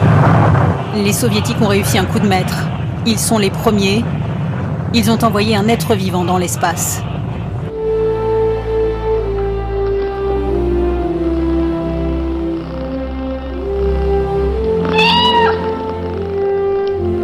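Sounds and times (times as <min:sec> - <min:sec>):
low droning background: 0:00.0 - 0:17.2
speech: 0:01.0 - 0:04.2, 0:04.9 - 0:07.1
cat meowing: 0:14.8 - 0:16.3.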